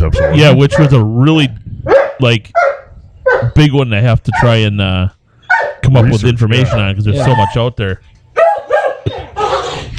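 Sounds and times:
several dogs barking, yipping and growling while play-fighting: 0.0s - 1.2s, 1.8s - 3.6s, 4.3s - 4.6s, 5.5s - 7.7s, 8.4s - 9.9s
speech: 0.1s - 2.6s, 3.4s - 5.2s, 5.8s - 8.2s.

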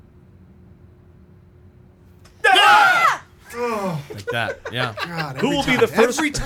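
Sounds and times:
piercing jump-scare scream in a movie trailer: 2.3s - 4.1s
laughter: 3.5s - 6.4s
speech: 4.2s - 6.4s.

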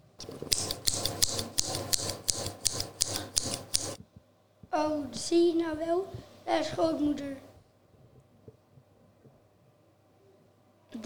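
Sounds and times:
scissors snipping as a hunter cuts open a wolf's belly: 0.2s - 4.0s
speech: 4.8s - 7.5s.

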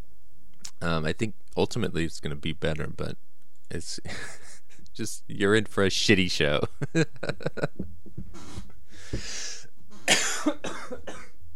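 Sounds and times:
speech: 0.8s - 4.4s, 5.0s - 11.2s
coughing off the microphone: 10.0s - 11.3s.

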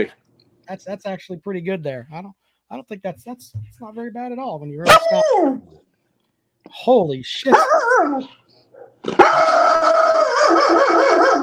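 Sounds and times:
speech: 0.0s - 5.9s, 6.6s - 8.4s, 9.0s - 9.7s
dog next door barking and howling: 4.8s - 5.8s, 7.4s - 11.4s.

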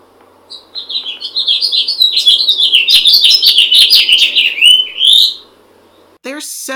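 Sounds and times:
house finch singing: 0.5s - 5.5s.

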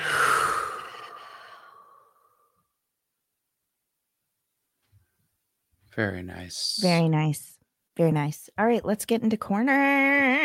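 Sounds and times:
group of people exhaling after taking a deep breath: 0.0s - 2.5s
speech: 6.0s - 10.4s.

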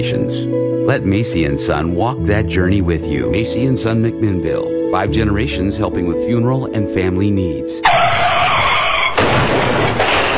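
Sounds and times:
speech: 0.0s - 8.0s
car tires skidding: 7.8s - 10.3s.

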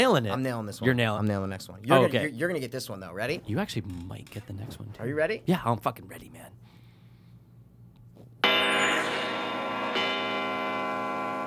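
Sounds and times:
speech: 0.0s - 6.6s
large bell ringing: 8.4s - 11.4s.

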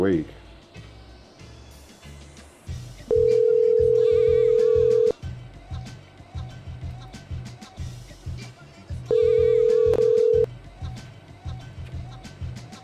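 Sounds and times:
busy rhythmic background: 0.3s - 12.8s
telephone ringing on a call line: 3.1s - 5.2s, 9.1s - 10.5s.

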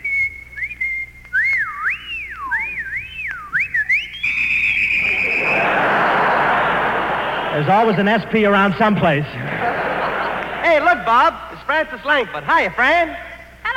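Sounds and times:
wolf whistle at a woman: 0.0s - 7.6s
laughter: 4.9s - 11.4s
speech: 7.7s - 9.5s, 11.0s - 13.3s.

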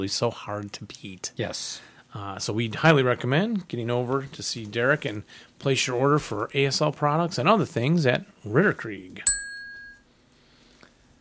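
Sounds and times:
speech: 0.0s - 9.4s
short bright bell ding: 9.3s - 10.0s.

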